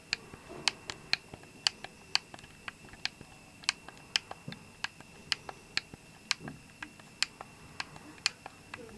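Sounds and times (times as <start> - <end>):
plastic arrow keys on an Xbox One controller clicking: 0.0 - 8.9.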